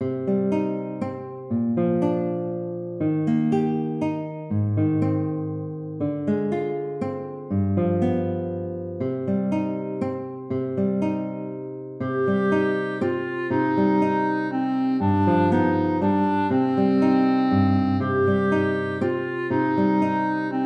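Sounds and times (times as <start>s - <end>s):
guitar: 0.0s - 20.6s
clarinet: 12.0s - 20.6s.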